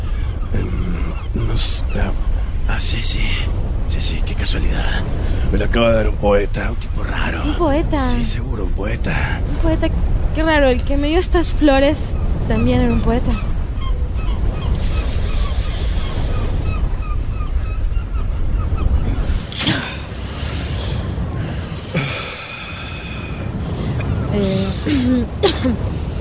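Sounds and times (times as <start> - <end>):
sharp bird cries: 0.0 - 2.6, 12.1 - 20.6
ocean waves breaking on the shore: 0.0 - 26.1
speech: 0.5 - 13.5.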